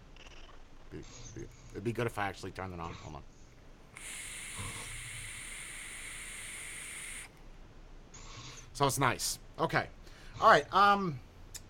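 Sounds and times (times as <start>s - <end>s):
speech: 0.9s - 3.3s, 8.8s - 11.3s
air drawn through an RTA vape tank with airflow fully open: 4.0s - 7.4s.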